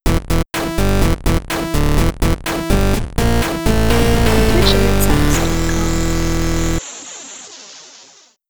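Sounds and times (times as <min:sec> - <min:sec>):
chiptune music: 0:00.0 - 0:06.8.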